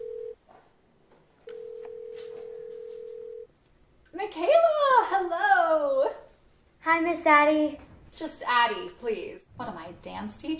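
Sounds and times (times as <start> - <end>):
telephone ringing tone heard over the line: 0.0 - 0.4, 1.5 - 3.5
speech: 4.2 - 5.8, 6.9 - 10.5.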